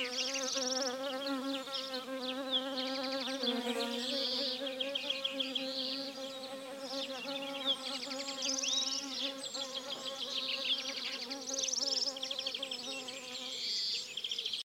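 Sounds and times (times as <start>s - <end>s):
bees buzzing: 0.0s - 13.6s.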